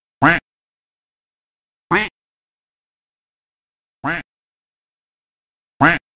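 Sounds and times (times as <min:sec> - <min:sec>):
duck sounds: 0:00.2 - 0:00.4, 0:01.9 - 0:02.1, 0:04.0 - 0:04.2, 0:05.8 - 0:06.0.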